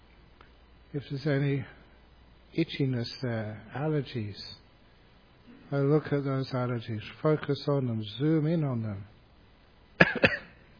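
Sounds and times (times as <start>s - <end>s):
speech: 0.9s - 1.8s, 2.5s - 4.6s, 5.7s - 9.1s, 10.1s - 10.4s
person coughing: 10.0s - 10.6s.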